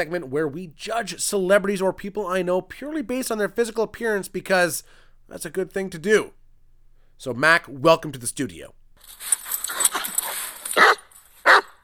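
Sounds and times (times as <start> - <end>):
speech: 0.0 - 6.4, 7.2 - 9.4
busy rustling noise: 1.1 - 11.8
wolfhound barking in a studio: 9.8 - 11.8.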